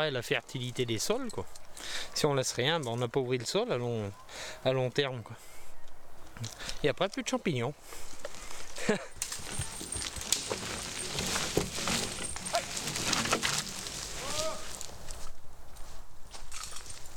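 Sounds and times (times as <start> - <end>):
speech: 0.0 - 5.5, 6.4 - 8.1, 8.8 - 9.1
faint rustling in a forest: 7.9 - 17.1
horse hooves clip-clopping over soft forest ground: 7.9 - 17.1.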